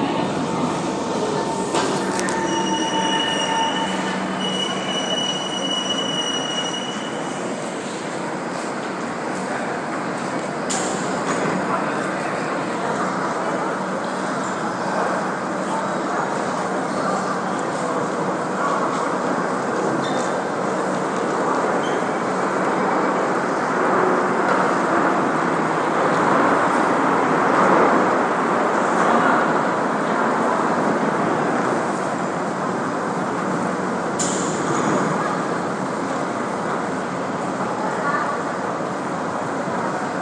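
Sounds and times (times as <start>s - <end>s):
train rumbling as it pulls away: 0.0s - 40.2s
train wheels squealing: 2.3s - 7.4s.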